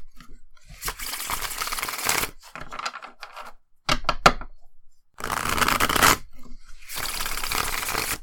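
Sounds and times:
deck of tarot cards being shuffled: 0.6s - 3.6s, 5.2s - 8.2s.

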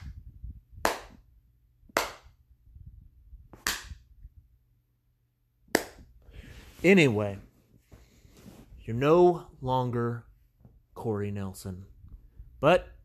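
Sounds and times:
faint low rumble: 0.0s - 13.0s
slow loud sharp hand claps: 0.8s - 1.2s, 1.9s - 2.4s, 3.6s - 4.0s, 5.8s - 6.1s
speech: 6.8s - 7.5s, 8.9s - 10.3s, 11.0s - 11.9s, 12.6s - 12.9s.

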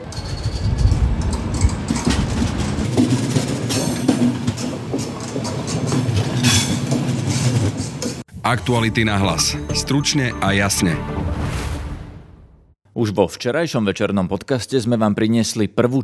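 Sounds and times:
passenger train wheels clattering: 0.0s - 8.3s
passenger train engine rumbling as it pulls away from a station: 0.0s - 10.8s
speech: 8.5s - 11.4s, 13.0s - 16.0s.

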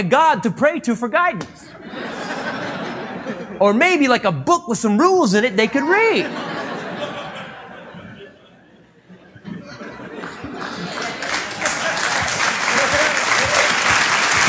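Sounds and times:
speech: 0.0s - 2.4s, 3.3s - 6.5s
audience laughter: 1.8s - 3.7s, 5.6s - 13.4s
audience applause: 10.0s - 14.4s.

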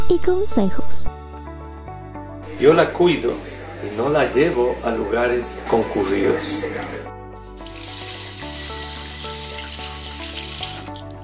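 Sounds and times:
speech: 0.1s - 1.2s, 2.6s - 7.2s
hands being washed under a running tap: 5.8s - 11.2s.

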